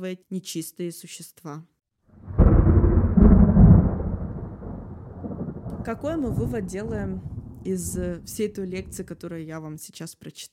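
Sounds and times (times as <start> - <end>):
speech: 0.0 - 1.7, 5.8 - 10.5
thunder crack and rumble: 2.2 - 9.3.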